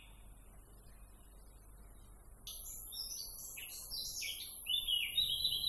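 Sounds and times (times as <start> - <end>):
unknown birds calling: 2.5 - 5.6.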